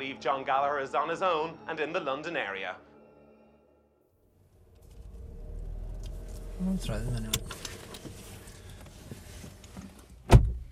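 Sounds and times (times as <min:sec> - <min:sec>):
speech: 0:00.0 - 0:02.9, 0:06.6 - 0:07.4
low rumble: 0:04.2 - 0:08.4
person shifting and rustling inside a car: 0:04.6 - 0:10.7
car door slamming shut: 0:10.2 - 0:10.7.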